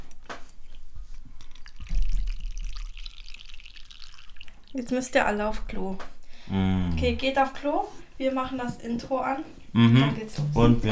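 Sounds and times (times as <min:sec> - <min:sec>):
tea pouring into a cup: 0:01.4 - 0:05.4
faint dripping: 0:01.4 - 0:06.3
speech: 0:04.7 - 0:10.9.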